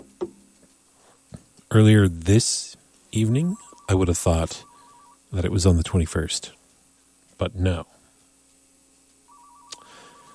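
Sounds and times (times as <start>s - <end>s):
speech: 1.7s - 4.7s, 5.3s - 6.6s, 7.4s - 8.0s
thin electronic phone tone for incoming call: 3.2s - 5.2s, 9.3s - 10.3s.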